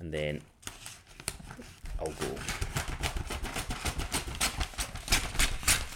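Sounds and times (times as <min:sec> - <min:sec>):
speech: 0:00.1 - 0:00.5, 0:02.0 - 0:02.6
crinkly paper rustling and crackling: 0:00.6 - 0:05.9.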